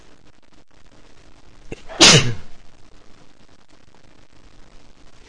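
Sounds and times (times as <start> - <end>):
man sneezing: 1.7 - 2.5.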